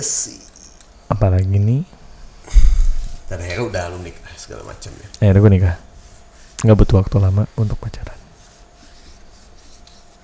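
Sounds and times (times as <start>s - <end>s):
speech: 0.0s - 2.6s, 3.3s - 5.9s, 6.6s - 8.2s
person scratching their belly: 2.2s - 10.2s.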